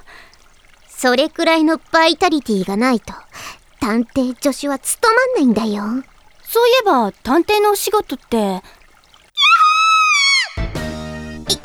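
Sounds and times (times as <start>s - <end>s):
speech: 1.0s - 3.2s, 3.9s - 8.8s
woman's high sustained scream: 9.4s - 10.7s.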